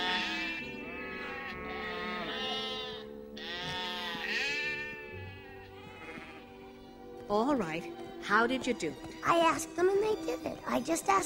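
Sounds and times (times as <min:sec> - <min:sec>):
many sheep bleating: 0:00.0 - 0:07.0
speech: 0:07.3 - 0:11.2.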